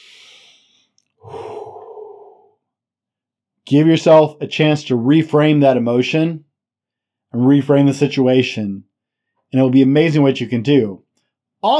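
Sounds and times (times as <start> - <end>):
slow deep breath: 0.0 - 2.6
speech: 3.7 - 6.5, 7.3 - 8.9, 9.5 - 11.0.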